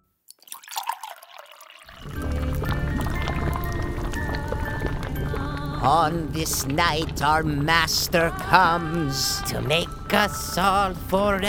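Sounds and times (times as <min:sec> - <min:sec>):
liquid being poured: 0:00.3 - 0:11.4
speech: 0:05.8 - 0:11.4.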